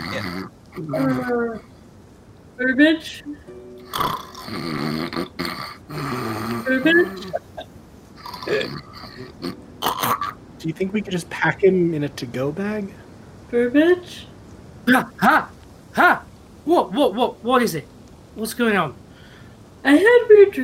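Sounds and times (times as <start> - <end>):
person imitating snoring with voiced grunts: 0.0 - 1.3, 3.9 - 7.4, 8.2 - 10.4
speech: 0.8 - 1.7, 2.6 - 5.5, 6.7 - 7.4, 8.4 - 14.3, 14.9 - 19.0, 19.8 - 20.6.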